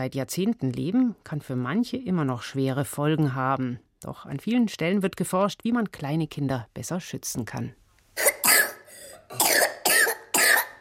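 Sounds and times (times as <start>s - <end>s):
speech: 0.0s - 8.3s
harsh coughing: 8.2s - 10.7s.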